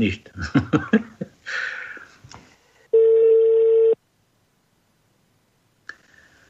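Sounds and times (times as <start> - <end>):
speech: 0.0 - 1.1
laughter: 0.4 - 1.4
steady mid-pitched telephone line tone of a failed call: 2.9 - 4.0.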